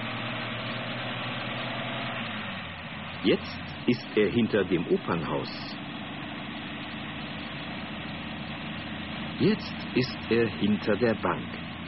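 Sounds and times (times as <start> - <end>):
car engine running: 0.0 - 11.8
speech: 3.2 - 5.8, 9.4 - 11.6.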